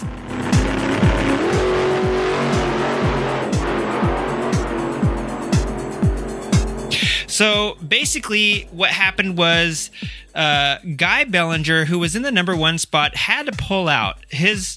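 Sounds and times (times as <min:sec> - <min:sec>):
racing motorcycle engines high-revving on a track with quick gear changes: 0:00.0 - 0:07.7
speech: 0:07.4 - 0:14.7.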